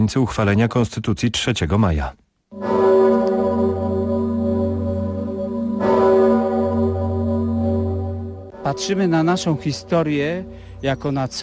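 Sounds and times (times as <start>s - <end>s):
speech: 0.0s - 2.2s, 8.7s - 11.4s
large historic church bell tolling in Kraków for Constitution Day: 2.5s - 11.4s.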